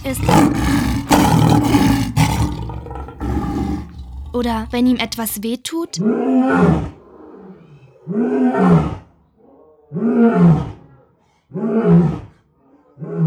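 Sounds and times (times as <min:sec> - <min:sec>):
speech: 0:00.0 - 0:00.7, 0:04.4 - 0:07.0, 0:08.1 - 0:09.0, 0:09.9 - 0:10.7, 0:11.5 - 0:12.2, 0:13.0 - 0:13.2
lion roaring: 0:00.0 - 0:05.3.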